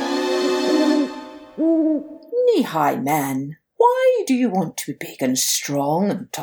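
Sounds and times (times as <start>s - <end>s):
owl hooting: 0.1s - 2.4s
speech: 2.6s - 3.6s, 4.3s - 6.4s.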